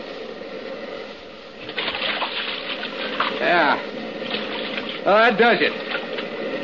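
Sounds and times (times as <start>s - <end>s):
splashing and churning water as a boat drives onto a beach: 1.6s - 3.5s, 4.2s - 5.1s
speech: 3.4s - 3.9s, 5.1s - 6.0s.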